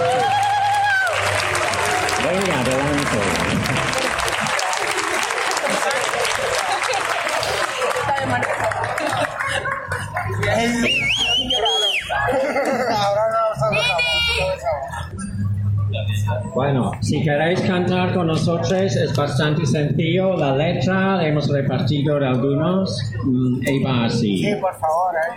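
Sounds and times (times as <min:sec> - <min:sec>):
audience applause: 0:00.0 - 0:12.1
crowd chatter: 0:00.0 - 0:25.3
laughter: 0:03.8 - 0:13.5, 0:14.6 - 0:15.9
audience whistles: 0:10.8 - 0:12.2
speech: 0:16.2 - 0:25.3.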